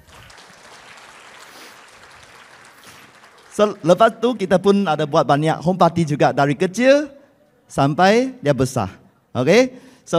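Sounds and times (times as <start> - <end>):
crowd clapping: 0.0 - 5.0
speech: 3.6 - 10.1.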